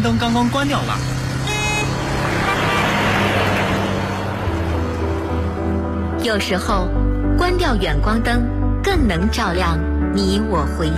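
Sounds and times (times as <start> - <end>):
speech: 0.0 - 1.2, 6.2 - 10.9
car engine and tyre noise on a road: 0.0 - 6.1.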